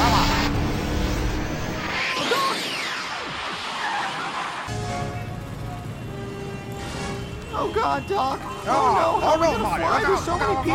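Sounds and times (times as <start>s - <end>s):
futuristic flying car lifting off with engine roar: 0.0s - 4.8s
speech: 7.6s - 10.7s.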